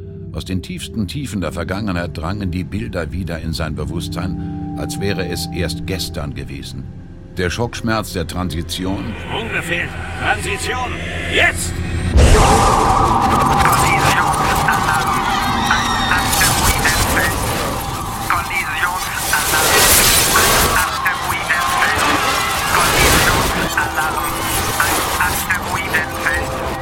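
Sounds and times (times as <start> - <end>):
speech: 0.4 - 14.3
indistinct voices: 8.4 - 26.8
honking alarm tones aboard a spaceship: 8.8 - 26.8
warning sirens wailing aboard a spaceship: 8.8 - 26.8
dense roar of rumbling noise: 9.0 - 18.3.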